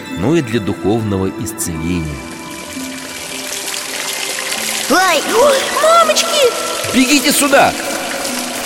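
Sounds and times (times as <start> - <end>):
speech: 0.2 - 2.3, 4.9 - 8.0
water gushing out of a rock spring: 2.0 - 8.6.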